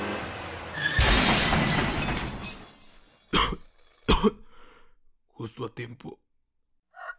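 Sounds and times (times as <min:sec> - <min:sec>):
car crash: 0:00.1 - 0:03.3
glass shattering: 0:00.8 - 0:03.4
person coughing: 0:03.3 - 0:04.6
speech: 0:05.5 - 0:06.2.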